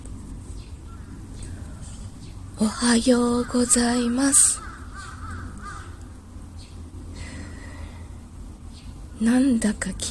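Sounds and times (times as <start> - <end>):
steady low hum: 0.0 - 10.0
several crows cawing: 0.9 - 1.6, 3.2 - 6.3
speech: 2.6 - 4.6, 9.2 - 10.0.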